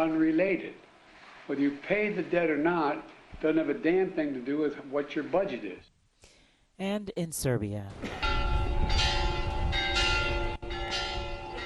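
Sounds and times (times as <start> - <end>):
speech: 0.0 - 0.9, 1.5 - 5.9, 6.8 - 8.2
church bells ringing: 8.2 - 11.6.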